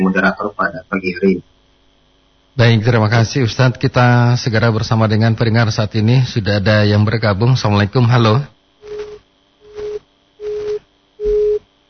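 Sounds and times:
speech: 0.1 - 1.5, 2.6 - 8.5
phone busy tone beeps after a call is cut off: 8.8 - 11.7.

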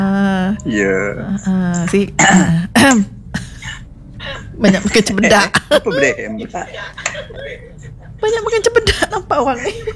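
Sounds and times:
hummed or voiced sounds: 0.0 - 3.1
speech: 0.6 - 3.4, 4.6 - 9.9
person clearing throat: 2.2 - 3.9
person coughing: 2.2 - 4.6
laughter: 5.1 - 9.9.

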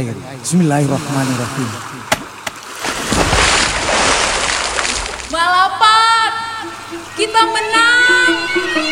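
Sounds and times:
speech: 0.0 - 2.0, 7.2 - 8.8
sea water sloshing and surging: 0.4 - 5.8
small stone thrown into the sea splashing: 2.1 - 5.4.

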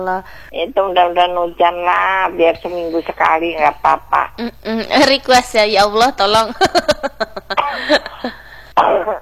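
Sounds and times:
speech: 0.0 - 7.2
person coughing: 7.6 - 9.2.

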